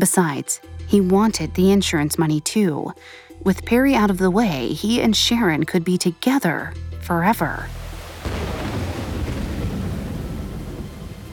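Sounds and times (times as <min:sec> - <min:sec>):
speech: 0:00.0 - 0:08.6
deep rumble of thunder: 0:07.8 - 0:11.3
heavy torrential rain pouring down: 0:07.8 - 0:11.3.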